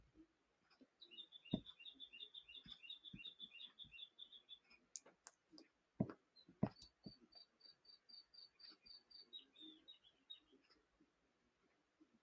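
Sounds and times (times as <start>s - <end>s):
small bird chirping in quick repeated trills: 0.9s - 5.0s, 6.3s - 10.8s.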